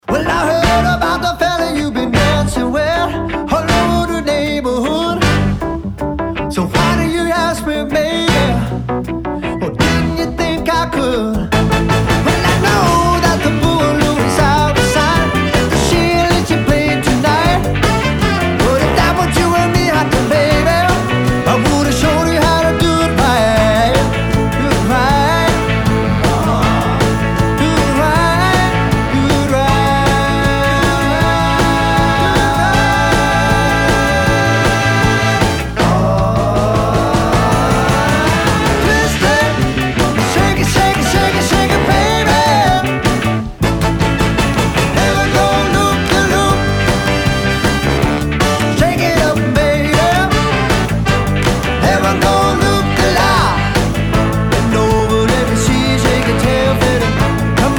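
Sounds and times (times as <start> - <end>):
wedding band playing: 0.0 - 57.7.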